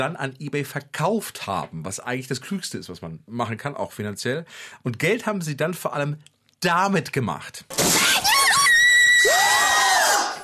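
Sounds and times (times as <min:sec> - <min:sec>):
speech: 0:00.0 - 0:08.3
high-pitched scream of joy at a parcel being delivered: 0:08.0 - 0:10.4.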